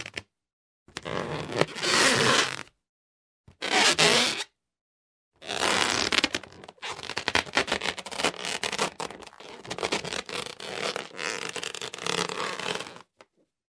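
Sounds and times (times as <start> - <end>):
air balloon squeaking: 1.1 - 2.6, 3.6 - 4.5, 5.4 - 13.1.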